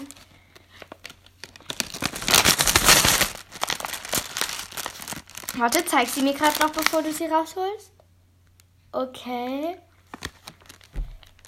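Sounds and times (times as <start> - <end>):
paper crinkling and rustling from handling: 0.0 - 7.3, 10.0 - 11.4
speech: 5.6 - 8.0, 8.9 - 9.9.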